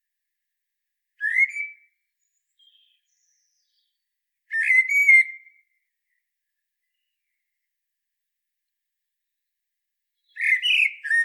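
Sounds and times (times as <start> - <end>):
common blackbird Turdus merula singing: 1.2 - 5.5, 10.2 - 11.2.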